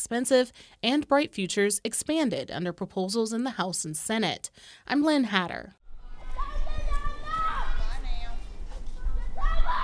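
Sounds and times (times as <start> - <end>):
speech: 0.0 - 5.8
kids shouting and calling on playground equipment: 5.9 - 8.3, 8.9 - 9.8.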